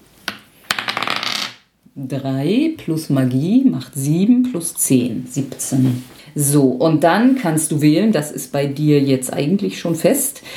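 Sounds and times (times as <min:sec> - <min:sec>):
six-sided die rolling on a hard surface: 0:00.7 - 0:01.6
speech: 0:02.0 - 0:10.5.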